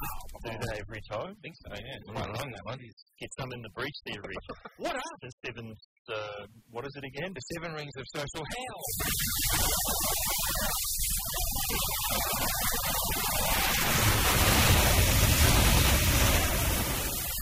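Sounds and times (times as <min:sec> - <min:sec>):
audio played backwards through heavy echo: 0:00.0 - 0:17.4
speech: 0:00.5 - 0:15.8.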